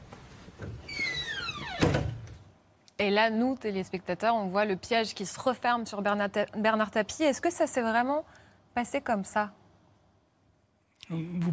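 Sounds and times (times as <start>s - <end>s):
faint noise: 0.0s - 11.5s
sliding door screeching shut with a solid thud: 0.8s - 2.3s
speech: 3.0s - 9.6s, 11.0s - 11.5s.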